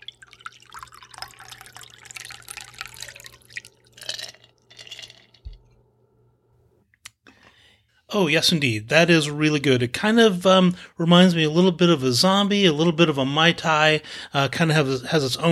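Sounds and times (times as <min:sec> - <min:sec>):
cocktail pouring from a shaker into a coupe glass: 0:00.0 - 0:05.7
speech: 0:08.1 - 0:15.4.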